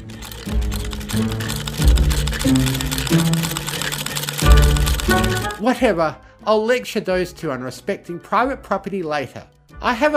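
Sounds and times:
sewing machine running at high speed: 0.0s - 5.6s
low tonal music: 0.0s - 10.1s
speech: 1.2s - 1.4s, 5.6s - 10.1s.

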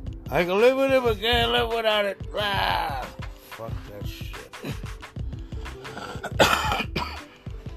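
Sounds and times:
speech: 0.3s - 4.2s
raspy throat-clearing: 5.8s - 7.3s
harsh phlegmy cigarette smoker's cough into the mic: 5.9s - 7.3s.

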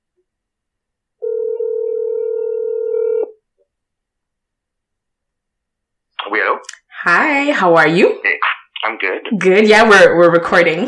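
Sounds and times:
telephone ringback tone of outgoing call: 1.2s - 3.3s
speech: 7.4s - 8.3s, 8.9s - 10.8s.

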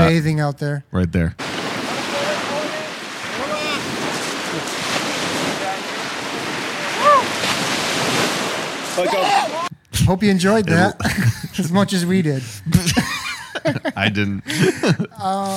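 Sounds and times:
speech: 0.1s - 1.4s, 9.0s - 15.5s
ocean surf washing onto a beach: 1.4s - 9.7s
laughter: 4.4s - 4.8s, 10.7s - 11.6s, 12.3s - 15.5s.

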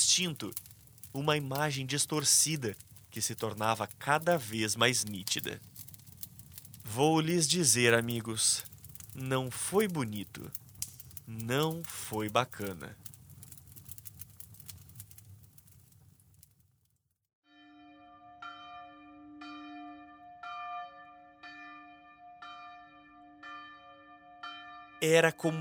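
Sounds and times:
rumbling noise: 0.0s - 16.6s
speech: 0.2s - 5.7s, 6.9s - 10.6s, 11.3s - 13.1s, 25.0s - 25.5s
church bells ringing: 17.5s - 25.5s.

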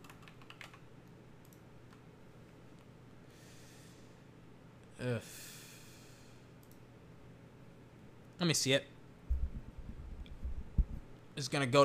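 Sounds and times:
faint typing on a computer keyboard while entering a search: 0.0s - 0.8s, 1.4s - 2.0s
steady low noise: 0.0s - 11.8s
speech: 5.0s - 5.5s, 8.4s - 8.9s, 11.4s - 11.8s.

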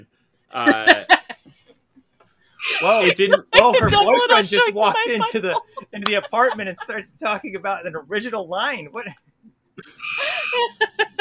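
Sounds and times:
speech: 0.0s - 1.2s, 2.8s - 11.0s
laughter: 0.6s - 1.6s, 2.6s - 7.8s, 9.8s - 11.1s
bird inside an apartment squawking and clucking: 9.8s - 10.6s.

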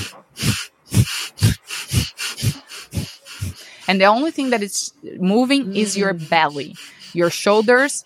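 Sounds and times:
forceful exhales through the nose in a breathwork exercise: 0.0s - 3.9s, 5.7s - 8.0s
speech: 3.9s - 8.0s.

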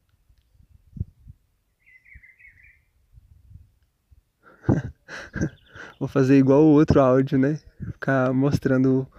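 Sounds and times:
small birds chirping outdoors: 0.4s - 3.0s, 4.4s - 9.1s
laughter: 4.6s - 5.7s
speech: 5.4s - 9.1s.

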